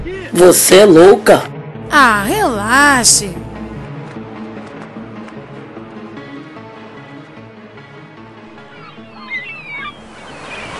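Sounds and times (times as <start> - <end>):
speech: 0.4 - 3.4
ocean waves washing onto a beach on a sunny day: 10.0 - 10.7.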